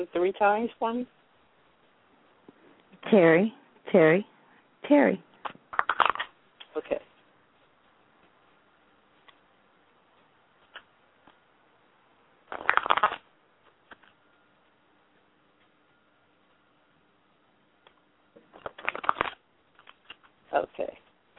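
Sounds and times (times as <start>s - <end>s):
speech: 0.0s - 1.2s, 3.0s - 5.6s, 6.8s - 7.1s
faint steady hum: 0.0s - 21.3s
playing cards being shuffled: 5.4s - 6.3s, 12.5s - 13.2s, 18.5s - 20.3s.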